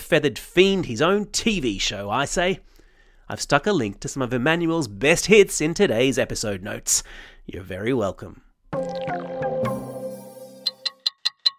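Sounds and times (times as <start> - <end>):
speech: 0.1 - 2.7, 3.3 - 9.4
descending ringing tonal sweep: 8.8 - 11.5
clock ticking: 10.6 - 11.5.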